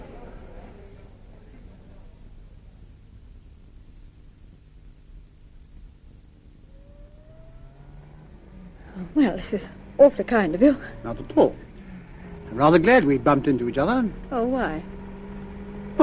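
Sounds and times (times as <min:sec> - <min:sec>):
car engine starting and settling into a rumble: 0:06.7 - 0:16.0
speech: 0:09.2 - 0:11.6, 0:12.6 - 0:15.0.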